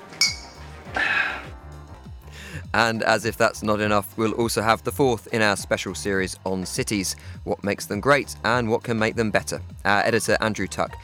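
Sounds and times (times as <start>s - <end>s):
glasses clinking in a toast: 0.0s - 1.4s
speech: 2.8s - 11.0s.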